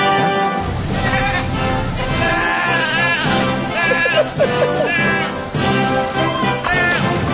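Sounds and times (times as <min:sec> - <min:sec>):
laughter: 0:00.1 - 0:07.1
goat bleating: 0:00.6 - 0:05.8.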